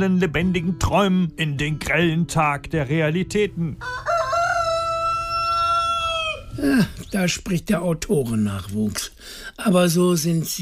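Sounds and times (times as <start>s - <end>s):
speech: 0.0s - 4.1s, 6.6s - 10.6s
rooster crowing: 3.8s - 6.6s.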